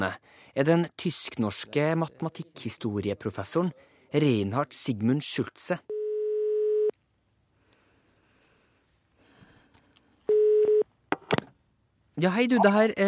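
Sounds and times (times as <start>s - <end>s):
speech: 0.0s - 6.0s, 12.2s - 13.0s
telephone ringing tone before a call: 5.9s - 6.9s, 10.3s - 10.8s.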